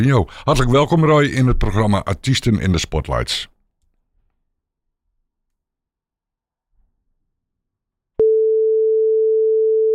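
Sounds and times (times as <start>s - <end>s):
speech: 0.0s - 3.5s
telephone dial tone after a hang-up: 8.2s - 9.9s.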